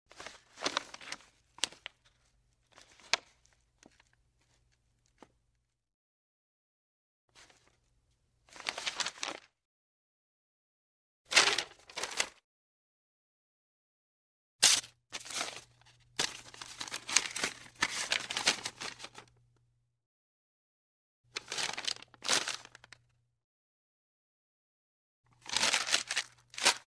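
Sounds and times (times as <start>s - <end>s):
parchment paper rustling: 0.1s - 5.3s, 8.5s - 9.5s, 11.3s - 12.4s, 14.6s - 19.3s, 21.4s - 23.0s, 25.4s - 26.9s.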